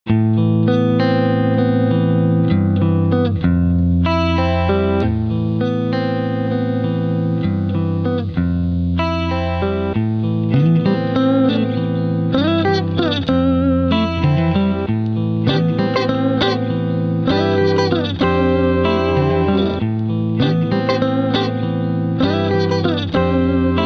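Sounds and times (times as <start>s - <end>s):
Fender Strat electric guitar loop through Roland JC120 amplifier: 0.1s - 23.8s.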